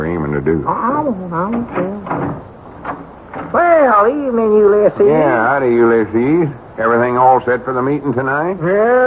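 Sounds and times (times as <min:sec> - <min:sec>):
speech: 0:00.4 - 0:09.0
door creaking open with hinge squeal: 0:01.4 - 0:04.1.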